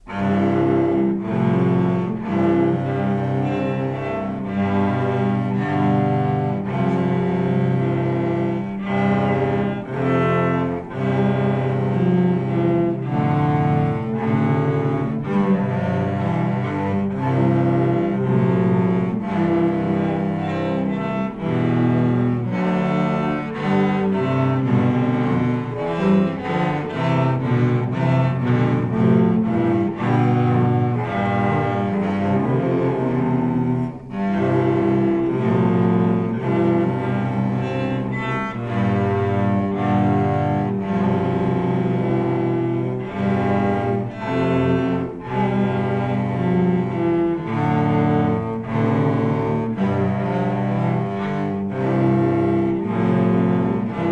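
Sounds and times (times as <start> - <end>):
cello quartet playing in a radio concert in an auditorium: 0.0 - 54.1.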